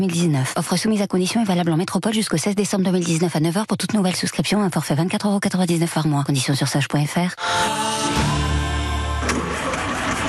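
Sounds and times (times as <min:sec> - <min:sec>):
speech: 0:00.0 - 0:08.5
car engine cranking, struggling to start: 0:09.0 - 0:10.2.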